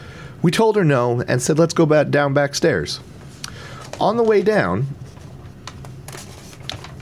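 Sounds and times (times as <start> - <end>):
low steady hum: 0.0 - 7.0
speech: 0.4 - 3.1, 4.0 - 5.0
paper page rustling as someone fumbles to turn it: 3.6 - 7.0.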